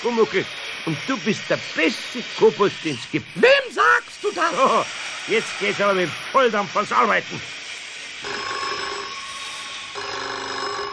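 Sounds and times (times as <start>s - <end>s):
speech: 0.0s - 7.6s
constant hiss: 0.0s - 10.9s
telephone ringing: 8.2s - 9.3s, 10.0s - 10.9s.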